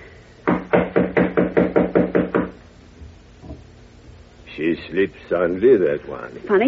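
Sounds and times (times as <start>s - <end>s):
firm knocks on a wooden door: 0.4s - 2.6s
speech: 4.8s - 6.6s.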